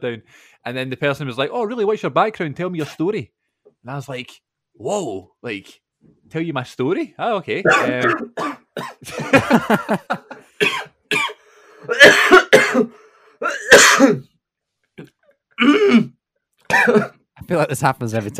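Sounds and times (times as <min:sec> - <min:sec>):
speech: 0:00.0 - 0:10.4, 0:11.9 - 0:14.3, 0:15.0 - 0:16.1, 0:16.7 - 0:18.3
throat clearing: 0:07.7 - 0:09.0, 0:10.6 - 0:14.2, 0:15.0 - 0:17.2
person coughing harshly: 0:07.7 - 0:09.3, 0:10.6 - 0:14.3, 0:15.6 - 0:16.1, 0:16.7 - 0:17.2
laughter: 0:09.0 - 0:10.6.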